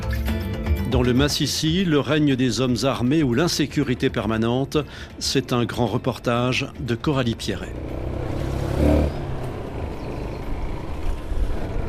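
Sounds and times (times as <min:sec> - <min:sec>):
speech: 0:00.9 - 0:08.2
motorcycle engine droning on a rough road: 0:07.3 - 0:11.8.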